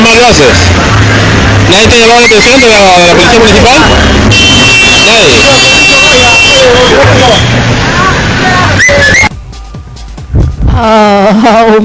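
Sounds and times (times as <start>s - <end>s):
busy street traffic noise: 0.0s - 11.8s
speech: 0.3s - 7.9s, 8.8s - 9.3s, 10.7s - 11.8s
car horn blast: 4.0s - 7.6s.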